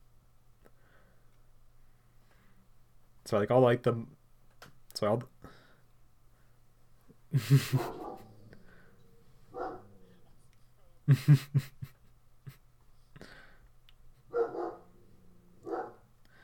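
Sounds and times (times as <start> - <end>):
speech: 3.3 - 4.2, 5.0 - 5.6, 7.3 - 8.0, 11.1 - 11.9
laughter: 7.3 - 8.3, 11.1 - 12.6
dog barking: 7.7 - 8.3, 9.5 - 10.0, 14.3 - 14.9, 15.6 - 16.0.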